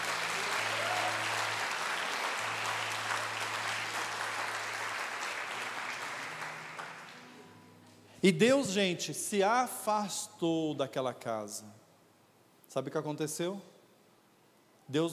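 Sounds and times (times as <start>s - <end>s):
audience applause: 0.0s - 7.4s
speech: 8.2s - 11.8s, 12.7s - 13.7s, 14.9s - 15.1s.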